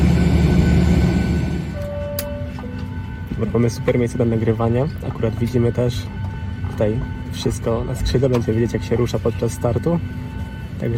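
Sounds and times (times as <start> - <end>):
high tone: 0.0 - 10.9
train arriving with a low rumble: 0.0 - 10.9
speech: 3.4 - 10.2, 10.8 - 10.9.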